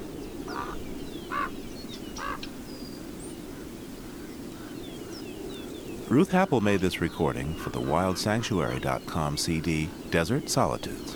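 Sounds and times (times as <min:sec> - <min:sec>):
Chihuahuan raven croaking in the Chihuahuan Desert of New Mexico: 0:00.5 - 0:01.6, 0:02.2 - 0:02.6, 0:06.1 - 0:11.1
speech: 0:06.1 - 0:11.1.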